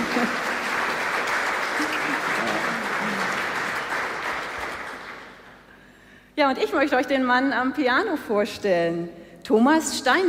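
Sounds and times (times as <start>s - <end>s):
audience applause: 0.0s - 5.6s
speech: 0.2s - 0.4s, 6.4s - 10.2s.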